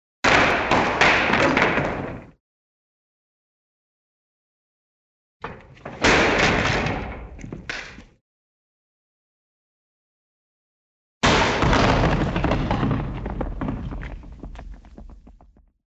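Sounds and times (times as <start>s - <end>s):
object falling down stairs: 0.3s - 2.4s, 5.4s - 8.2s, 11.2s - 15.7s.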